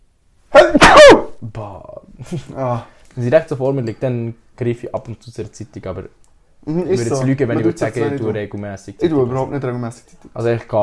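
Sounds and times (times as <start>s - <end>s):
single loud sneeze: 0.5s - 1.4s
speech: 2.2s - 10.8s.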